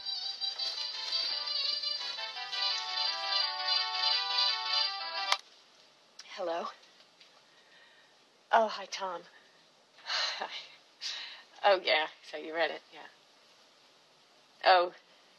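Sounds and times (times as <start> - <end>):
woman's cell phone ringing with a bright electronic tone: 0.0 - 5.4
speech: 6.4 - 6.8, 8.5 - 9.4, 10.4 - 13.2, 14.6 - 15.0.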